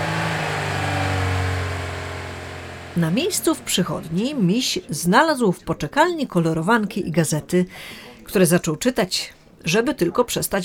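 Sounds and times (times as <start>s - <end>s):
car engine humming as the car drives off: 0.0s - 4.6s
speech: 3.0s - 10.6s.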